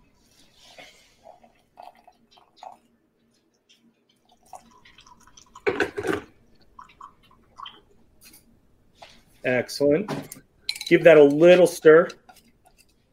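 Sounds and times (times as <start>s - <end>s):
hot water poured into a container of honey: 1.2s - 2.9s, 4.1s - 8.0s
liquid drips: 1.4s - 8.4s
splashing pour: 4.2s - 7.9s
speech: 9.4s - 12.2s.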